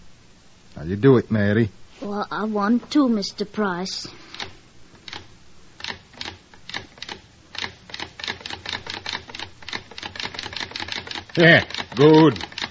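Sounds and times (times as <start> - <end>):
speech: 0.8 - 4.2, 11.4 - 12.6
sewing machine stitching a single thread chain: 5.8 - 12.6.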